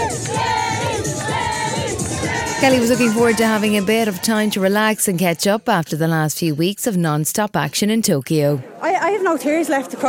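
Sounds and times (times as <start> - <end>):
large crowd cheering and shouting at homecoming celebration: 0.0 - 5.0
speech: 2.6 - 10.0.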